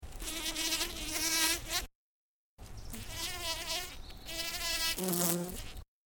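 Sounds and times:
bumblebee buzzing in flower, wings hitting petals: 0:00.1 - 0:01.9, 0:02.9 - 0:05.9.

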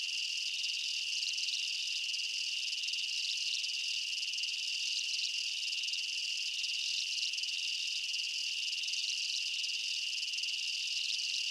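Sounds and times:
insects chirping in chorus in a night jungle: 0:00.0 - 0:11.4.

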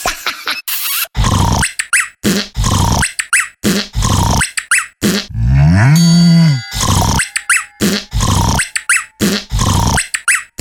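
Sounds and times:
zany crazy montage of sound effects: 0:00.1 - 0:10.5.

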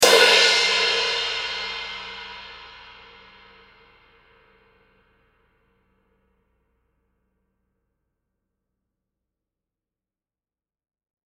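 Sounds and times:
Sabian AAX 16 inch stage crash cymbal single hit: 0:00.0 - 0:05.4.

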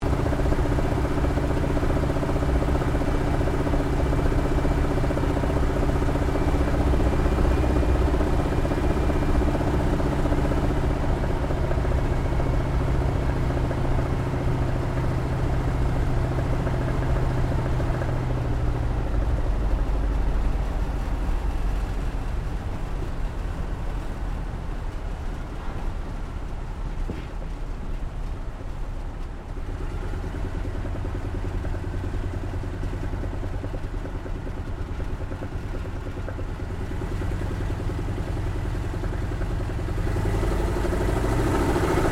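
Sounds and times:
CAC Wirraway CA-16 aircraft touch and go heard from the interior: 0:00.0 - 0:42.0.

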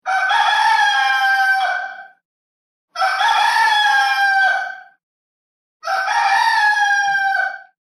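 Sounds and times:
rooster crowing: 0:00.0 - 0:02.2, 0:03.0 - 0:05.0, 0:05.8 - 0:07.7.

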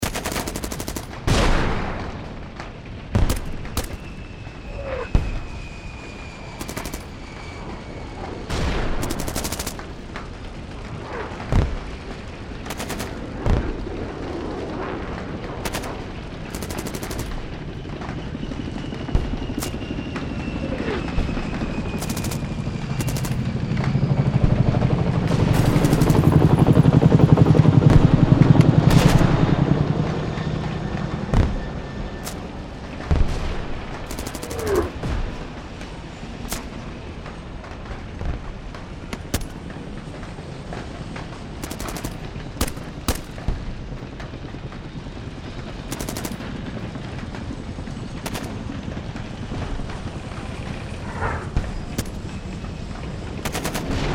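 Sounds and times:
modern warfare battlefield ambience: 0:00.0 - 0:54.1.

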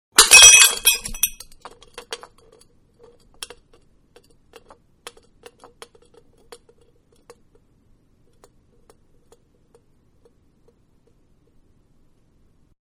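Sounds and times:
bottle breaking on concrete: 0:00.2 - 0:01.7.

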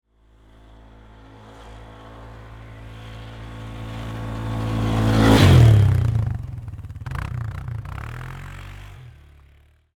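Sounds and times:
500cc four-wheeler ATV jumping and passing by close: 0:00.3 - 0:09.9.

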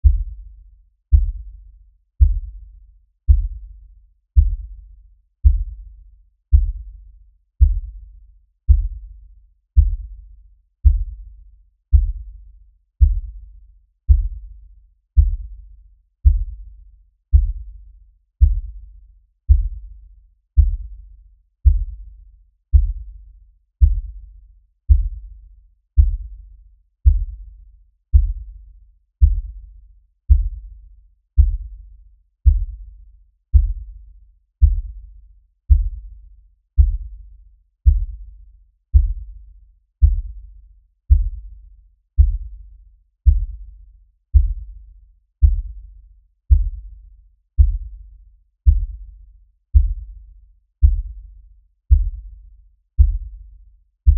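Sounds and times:
low bass pounding rhythm beat: 0:00.0 - 0:00.5, 0:01.1 - 0:01.6, 0:02.2 - 0:02.7, 0:03.3 - 0:03.8, 0:04.4 - 0:07.0, 0:07.6 - 0:08.1, 0:08.7 - 0:09.2, 0:09.8 - 0:10.2, 0:10.8 - 0:11.3, 0:11.9 - 0:12.4, 0:13.0 - 0:13.5, 0:14.1 - 0:14.6, 0:15.2 - 0:15.6, 0:16.2 - 0:16.7, 0:17.3 - 0:17.8, 0:18.4 - 0:18.9, 0:19.5 - 0:20.0, 0:20.6 - 0:21.0, 0:21.6 - 0:22.1, 0:22.7 - 0:23.2, 0:23.8 - 0:24.3, 0:24.9 - 0:25.4, 0:26.0 - 0:26.4, 0:27.0 - 0:27.5, 0:28.1 - 0:28.6, 0:29.2 - 0:29.7, 0:30.3 - 0:30.8, 0:31.4 - 0:31.8, 0:32.4 - 0:32.9, 0:33.5 - 0:34.0, 0:34.6 - 0:35.1, 0:35.7 - 0:36.2, 0:36.8 - 0:37.2, 0:37.8 - 0:38.3, 0:38.9 - 0:39.4, 0:40.0 - 0:40.5, 0:41.1 - 0:41.6, 0:42.2 - 0:42.6, 0:43.2 - 0:44.8, 0:45.4 - 0:45.9, 0:46.5 - 0:47.0, 0:47.6 - 0:49.2, 0:49.8 - 0:52.4, 0:53.0 - 0:53.5.

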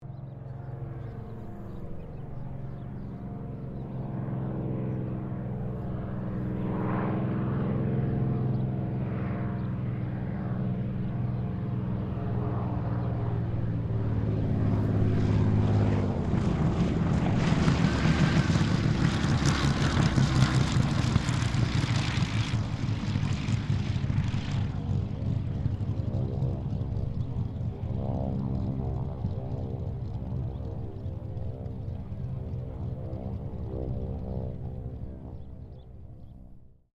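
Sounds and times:
Supermarine Spitfire Mk XVI aircraft landing: 0:00.0 - 0:36.7.

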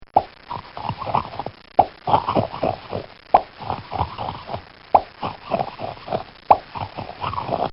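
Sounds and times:
cartoon pop crunch sound effect: 0:00.0 - 0:07.7.

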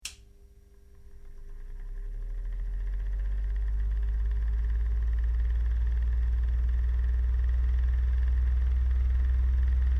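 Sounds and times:
small desk fan running: 0:00.0 - 0:09.9.

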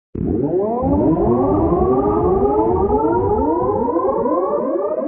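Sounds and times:
spaceship blasts on take-off: 0:00.2 - 0:04.2
long high-pitched surge: 0:00.8 - 0:04.9.

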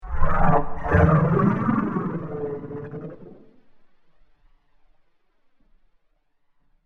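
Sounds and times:
science fiction spaceship engine ambience: 0:00.0 - 0:03.7.

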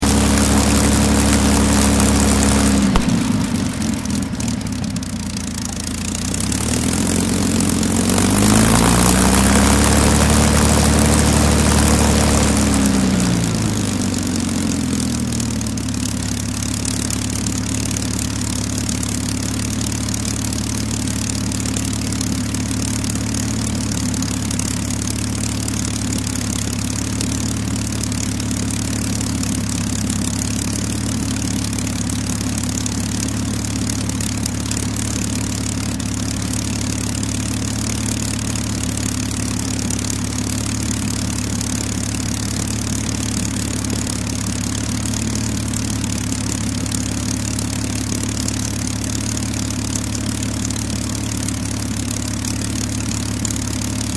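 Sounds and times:
Spitfire Rolls Royce Merlin aircraft engine idling and shutting down: 0:00.0 - 0:54.1.

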